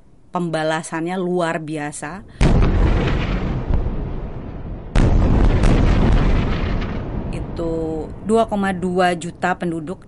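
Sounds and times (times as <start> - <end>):
speech: 0.4 - 2.5, 7.6 - 10.0
bomb explosions in Gaza: 2.4 - 9.4.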